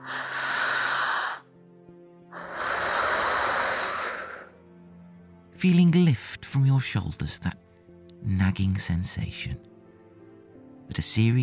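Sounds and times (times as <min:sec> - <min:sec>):
slow deep cleansing breath: 0:00.0 - 0:01.6, 0:02.3 - 0:04.7
speech: 0:05.6 - 0:07.6, 0:08.2 - 0:09.7, 0:10.9 - 0:11.4.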